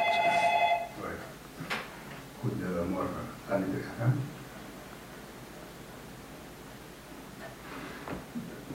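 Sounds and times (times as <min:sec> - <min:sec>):
telephone ringing with an electronic trill for an incoming call: 0:00.0 - 0:01.0
speech: 0:02.4 - 0:04.4.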